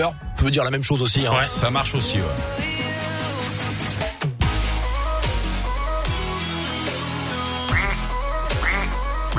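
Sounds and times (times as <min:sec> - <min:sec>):
speech: 0:00.0 - 0:02.8
loud electronic dance music with a heavy bass line: 0:01.2 - 0:09.3
quacking duck-like squawks: 0:07.7 - 0:09.3.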